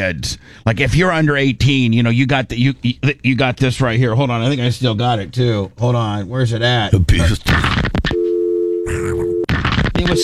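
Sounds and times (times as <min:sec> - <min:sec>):
speech: 0:00.0 - 0:07.9
steady electronic phone busy tone: 0:08.2 - 0:10.2.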